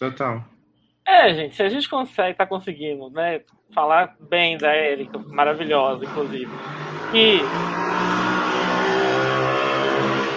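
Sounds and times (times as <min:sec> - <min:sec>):
speech: 0:00.0 - 0:00.5, 0:01.1 - 0:08.2
car passing by outside: 0:05.4 - 0:10.3.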